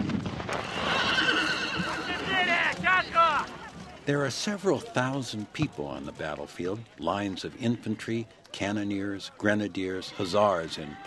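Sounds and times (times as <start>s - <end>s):
horse hooves clopping and stamping: 0.0s - 7.6s
prancing horse whinnying at a battle reenactment: 0.6s - 3.2s
speech: 4.1s - 11.0s.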